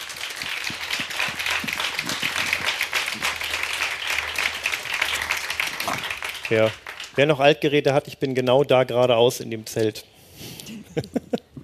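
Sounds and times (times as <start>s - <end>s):
crowd applauding: 0.0s - 7.6s
speech: 6.5s - 10.1s, 11.0s - 11.2s.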